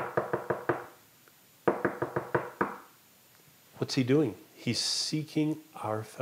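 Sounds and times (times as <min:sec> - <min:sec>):
firm knocking on a door: 0:00.0 - 0:00.9, 0:01.7 - 0:02.8
speech: 0:03.8 - 0:06.2.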